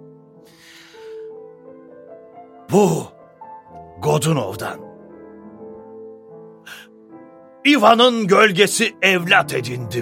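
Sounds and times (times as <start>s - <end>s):
deep breath drawn in sharply through the mouth: 0.5s - 1.3s
speech: 2.7s - 3.2s, 4.0s - 4.9s, 7.6s - 10.0s.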